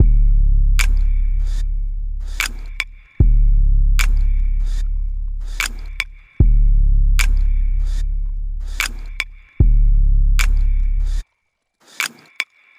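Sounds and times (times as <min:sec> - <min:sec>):
drum loop at 150 bpm: 0:00.0 - 0:01.6, 0:02.2 - 0:11.2.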